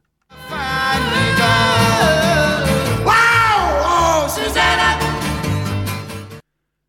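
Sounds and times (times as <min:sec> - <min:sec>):
lively banjo-driven song: 0:00.3 - 0:06.4
person screaming: 0:01.2 - 0:04.6.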